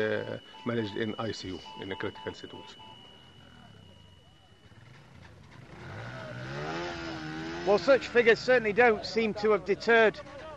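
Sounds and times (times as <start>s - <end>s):
speech: 0.0s - 3.0s, 7.6s - 10.4s
busy motorcycle market bustle: 0.0s - 10.5s
traffic at a busy motorcycle market: 0.0s - 10.5s
motorcycle engine revving at a busy motorcycle market: 4.6s - 9.4s.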